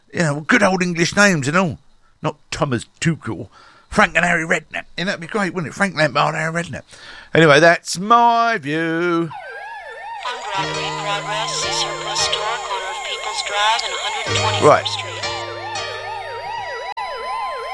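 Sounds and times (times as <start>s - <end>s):
speech: 0.1s - 9.4s, 10.2s - 12.4s, 13.5s - 15.1s
police siren wailing: 9.3s - 17.7s.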